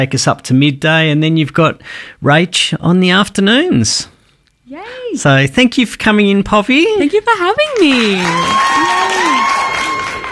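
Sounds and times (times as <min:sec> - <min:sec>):
speech: 0:00.0 - 0:04.1, 0:04.7 - 0:09.6
crowd clapping: 0:07.6 - 0:10.3
voices whooping: 0:08.0 - 0:10.3.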